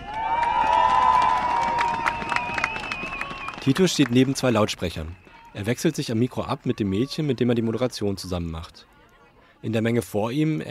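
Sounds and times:
lively crowd clapping and cheering at a strike gathering: 0.0 - 7.1
steady whistling tone from strikers' whistles: 1.8 - 3.6
speech: 3.6 - 8.9, 9.6 - 10.6.

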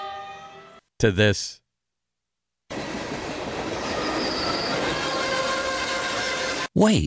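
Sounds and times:
speech: 1.0 - 1.6, 6.8 - 7.0
train rumbling along the rails: 2.7 - 6.8
metallic screeching of train on rails: 3.7 - 6.7.

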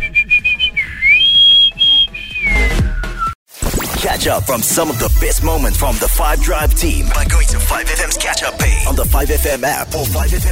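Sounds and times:
referee's whistle blasts: 0.0 - 3.4
speech: 4.2 - 10.4.

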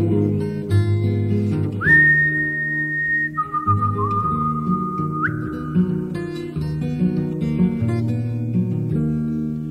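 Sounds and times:
steady acoustic guitar strumming: 0.0 - 9.6
clear sustained human whistle: 1.8 - 6.0.

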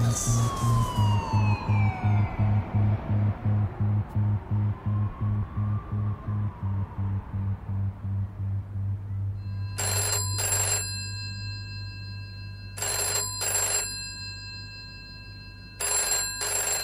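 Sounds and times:
low steady hum: 0.0 - 16.6
speech: 3.7 - 8.8
old-fashioned telephone bell ringing with rapid metallic trills: 9.4 - 16.8.

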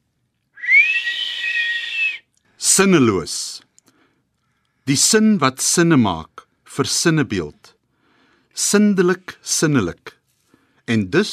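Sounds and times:
whistling kettle: 0.6 - 2.3
speech: 2.7 - 3.5, 4.9 - 7.8, 8.6 - 10.2, 10.9 - 11.3.

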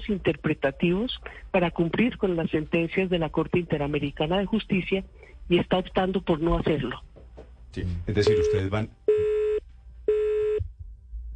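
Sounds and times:
faint low noise: 0.0 - 11.3
speech: 0.1 - 7.1, 7.7 - 9.3
telephone busy tone after a dropped phone call: 8.3 - 10.6.

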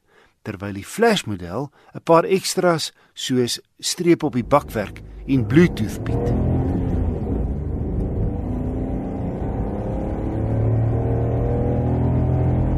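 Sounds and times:
speech: 0.4 - 6.7
Datsun 1.2-liter three-cylinder car engine revving: 4.3 - 12.7.

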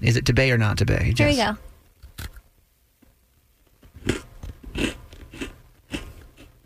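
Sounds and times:
speech: 0.0 - 1.7
person biting and crunching a gingerbread cookie: 3.8 - 6.6.

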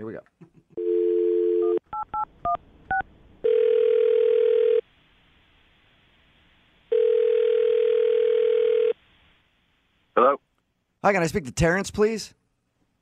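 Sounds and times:
steady telephone dial tone: 0.8 - 1.8, 2.9 - 4.8, 6.9 - 9.0
speech: 11.0 - 12.4.

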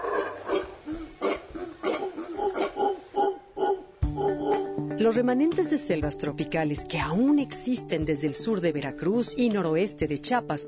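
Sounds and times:
howler monkey deep guttural roars and grunts: 0.0 - 4.8
speech: 5.0 - 10.6.

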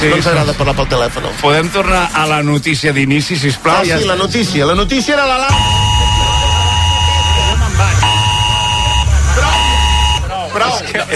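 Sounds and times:
speech: 0.0 - 6.0, 10.6 - 11.1
alarm blaring: 5.5 - 10.5.

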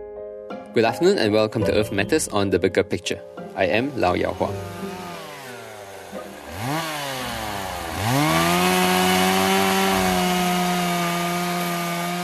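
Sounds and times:
speech: 0.7 - 4.8
chainsaw revving and cutting wood: 3.6 - 12.2.

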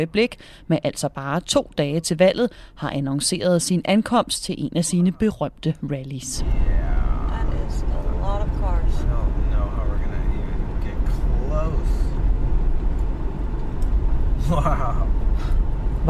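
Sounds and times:
speech: 0.0 - 7.1, 14.5 - 16.0
dense traffic of cars on a busy road in a rural town in the American South: 6.2 - 16.0.

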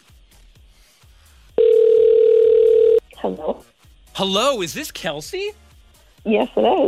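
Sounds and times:
telephone ringback tone on outgoing radio station call: 1.6 - 3.0
speech: 4.2 - 5.6, 6.2 - 6.8.

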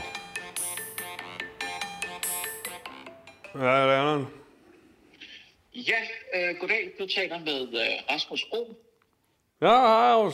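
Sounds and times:
phone ringtone melody: 0.0 - 4.1
speech: 3.6 - 4.4, 5.8 - 8.9, 9.6 - 10.3.

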